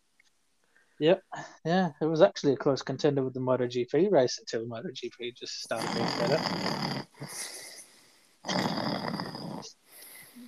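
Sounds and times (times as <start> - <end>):
speech: 1.0 - 7.6
person imitating a snore with a rasping snort: 5.7 - 7.8, 8.5 - 10.4.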